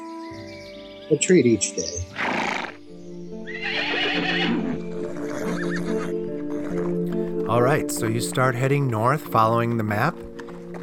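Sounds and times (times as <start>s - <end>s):
speech: 1.1s - 2.2s, 7.6s - 10.3s
horse neighing in a long wavering whinny: 2.1s - 2.8s, 3.5s - 7.0s
horse hooves clopping: 3.5s - 10.8s.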